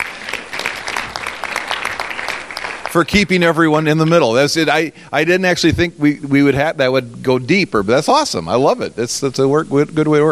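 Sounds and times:
church congregation applauding the ushers: 0:00.0 - 0:03.7
speech: 0:02.9 - 0:10.3.

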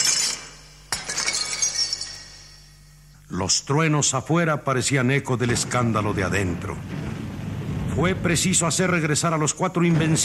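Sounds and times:
falling glass shards clinking: 0:00.0 - 0:02.8
glass and lamps smashed with a long broom handle: 0:00.0 - 0:02.8
light tinkling of glass: 0:00.0 - 0:03.0
speech: 0:03.3 - 0:07.2, 0:08.0 - 0:10.2.

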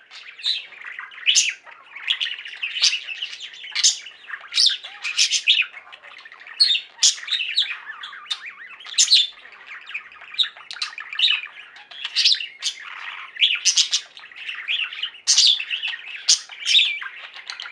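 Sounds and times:
budgerigar chattering: 0:00.0 - 0:17.6.

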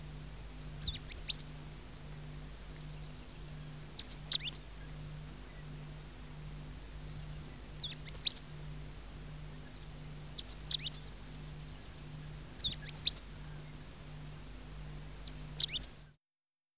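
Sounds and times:
faint low drone: 0:00.0 - 0:15.8
great pampa finch chirping in wet grasslands in Argentina: 0:00.6 - 0:01.5, 0:02.8 - 0:05.8, 0:07.1 - 0:13.6, 0:15.2 - 0:15.9.

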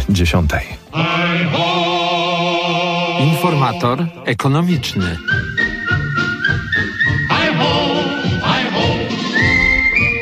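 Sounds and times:
speech: 0:00.1 - 0:01.9, 0:03.2 - 0:05.4
person whistling along in a radio studio: 0:05.2 - 0:10.2.

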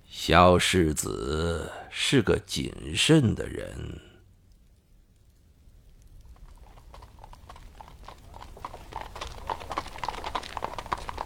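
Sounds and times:
speech: 0:00.2 - 0:04.1
horse hooves clip-clopping drawing a carriage along a road in heavy snow: 0:05.8 - 0:11.2.

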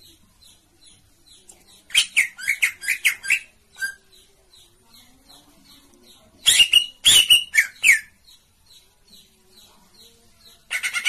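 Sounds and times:
Oriental magpie-robin rasping chirps: 0:01.9 - 0:04.2, 0:06.4 - 0:08.2, 0:10.7 - 0:11.0.

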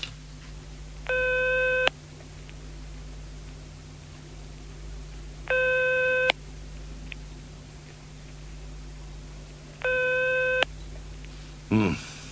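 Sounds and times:
low hum: 0:00.1 - 0:12.3
telephone busy tone after a dialed call: 0:01.1 - 0:01.9, 0:05.5 - 0:06.4, 0:09.8 - 0:10.7.

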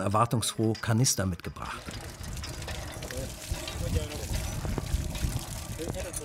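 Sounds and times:
speech: 0:00.0 - 0:02.1
water pouring from the spout of a newly drilled village well's hand pump: 0:01.6 - 0:06.2.

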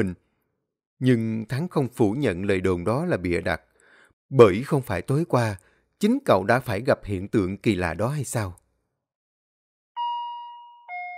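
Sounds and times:
speech: 0:00.0 - 0:00.2, 0:01.0 - 0:03.7, 0:04.3 - 0:08.6
elevator bell two-note chime: 0:10.0 - 0:11.1.

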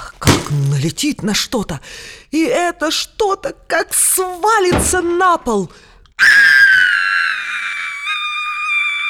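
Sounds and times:
speech: 0:00.5 - 0:06.5
boy screaming loudly in fright: 0:06.2 - 0:09.0.

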